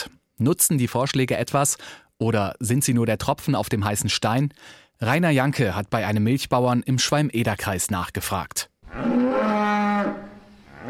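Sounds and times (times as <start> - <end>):
speech: 0.4 - 9.2
dairy cow mooing during milking time: 8.9 - 10.8.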